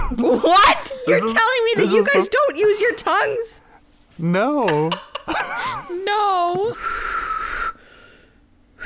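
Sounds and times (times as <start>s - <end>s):
speech: 0.2s - 7.0s
person attempting to whistle with breathy blowing: 6.8s - 7.8s.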